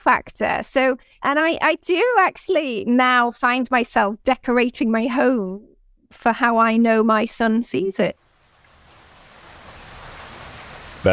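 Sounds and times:
speech: 0:00.0 - 0:08.2
steady rain falling: 0:08.2 - 0:11.1.

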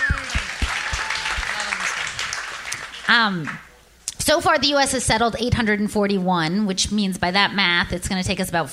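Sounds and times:
crowd clapping: 0:00.0 - 0:03.8
speech: 0:03.1 - 0:08.7.

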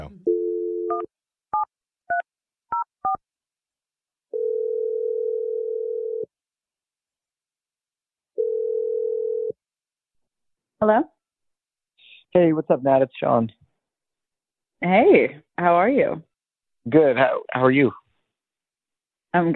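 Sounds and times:
telephone dial tone: 0:00.3 - 0:01.1, 0:04.3 - 0:06.3, 0:08.4 - 0:09.6
speech: 0:01.0 - 0:01.2, 0:10.8 - 0:11.1, 0:12.3 - 0:13.6, 0:14.8 - 0:18.0, 0:19.3 - 0:19.5.

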